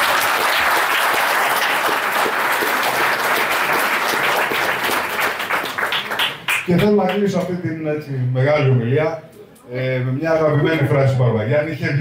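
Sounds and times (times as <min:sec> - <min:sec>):
sustained applause from an audience for a book editor: 0:00.0 - 0:07.2
speech: 0:06.7 - 0:11.9.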